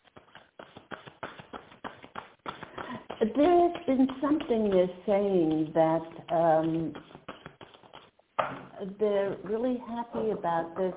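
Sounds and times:
knuckles rapping on a deck of cards during a card reading: 0:00.0 - 0:05.7, 0:06.3 - 0:08.6
speech: 0:03.2 - 0:07.1, 0:08.8 - 0:10.9.

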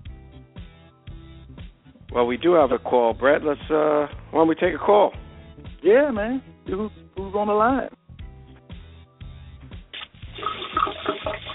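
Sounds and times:
speech: 0:02.1 - 0:08.0
water running and splashing over a telephone line: 0:10.0 - 0:11.5.

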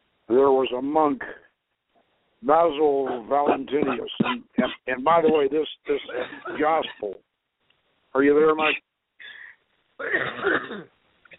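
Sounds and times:
faint small noise: 0:00.0 - 0:11.3
speech: 0:00.3 - 0:01.4, 0:02.4 - 0:07.3, 0:08.1 - 0:08.9, 0:10.0 - 0:11.0
rough throaty cough or throat-clearing: 0:03.1 - 0:05.5, 0:06.1 - 0:07.1, 0:10.0 - 0:10.9.

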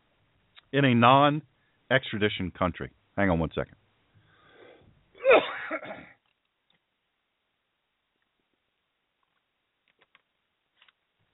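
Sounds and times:
speech: 0:00.7 - 0:03.8
soft breathy sound: 0:04.1 - 0:05.0
single loud harsh cough: 0:05.2 - 0:06.2.

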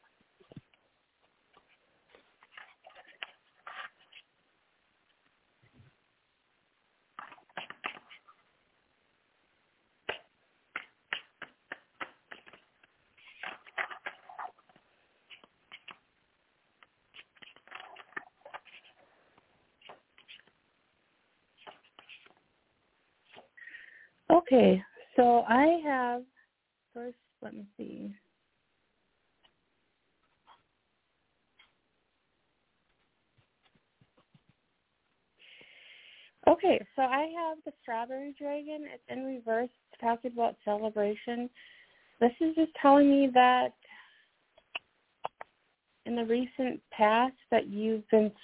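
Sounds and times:
deck of cards shuffling for a card reading: 0:02.1 - 0:04.3, 0:07.2 - 0:08.4, 0:10.0 - 0:16.1, 0:16.8 - 0:19.0, 0:19.8 - 0:20.6, 0:21.6 - 0:22.4
speech: 0:24.5 - 0:26.3, 0:27.0 - 0:28.2, 0:36.7 - 0:43.8, 0:46.1 - 0:48.4.

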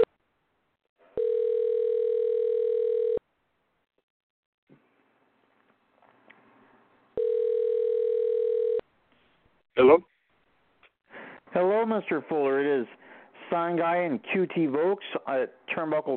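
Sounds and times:
telephone ringing tone on a call placed to a guest: 0:01.2 - 0:03.2, 0:07.2 - 0:08.8
speech: 0:09.8 - 0:10.1, 0:11.6 - 0:16.1.

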